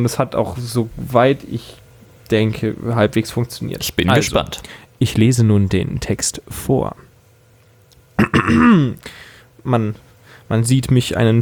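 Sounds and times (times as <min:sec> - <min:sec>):
speech: 0:00.0 - 0:07.1, 0:08.2 - 0:11.4
gruff throat clearing: 0:08.2 - 0:09.0.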